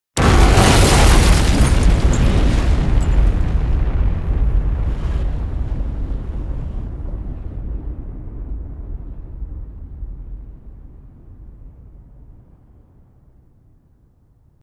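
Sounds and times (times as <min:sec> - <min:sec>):
crash: 0:00.2 - 0:07.4
explosion: 0:00.2 - 0:11.9.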